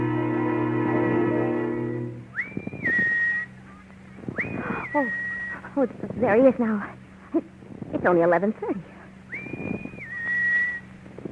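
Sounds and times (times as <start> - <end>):
low hum: 0.0 - 11.3
person whistling one long steady note: 2.3 - 3.6, 4.4 - 5.6, 9.3 - 10.9
speech: 5.0 - 5.2, 5.8 - 8.9.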